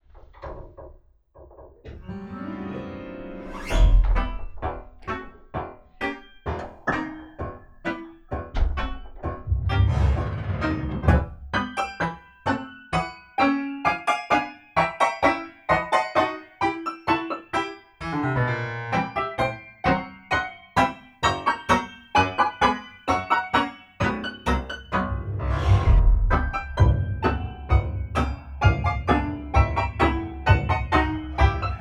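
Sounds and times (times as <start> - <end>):
Fazioli concert grand piano strings picked and muted: 0.1 - 31.7.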